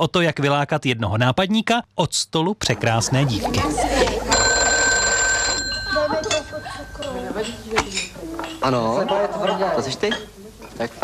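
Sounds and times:
speech: 0:00.0 - 0:04.4, 0:07.1 - 0:11.0
telephone bell ringing: 0:04.3 - 0:07.1.

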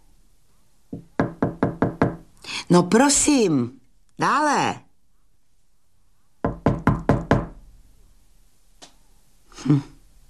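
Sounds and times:
knocking on a door: 0:00.9 - 0:02.3, 0:06.4 - 0:07.6
speech: 0:02.7 - 0:04.8, 0:09.7 - 0:09.9.

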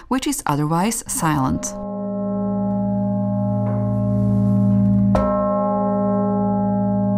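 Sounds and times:
speech: 0:00.1 - 0:01.8
large deep church bell ringing: 0:01.6 - 0:07.1.

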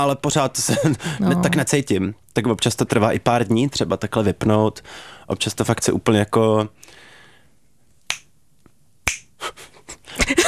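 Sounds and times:
speech: 0:00.0 - 0:07.0
finger snaps: 0:08.0 - 0:09.4.

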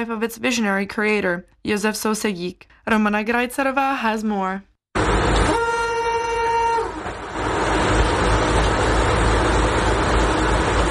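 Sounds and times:
speech: 0:00.0 - 0:04.7
vintage streamlined red Tatra railcar Slovenská strela rumbling along: 0:05.0 - 0:10.9.

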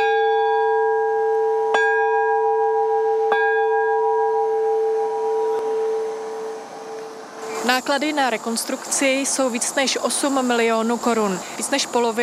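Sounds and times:
large church bell clanging: 0:00.0 - 0:07.7
speech: 0:07.7 - 0:12.2.

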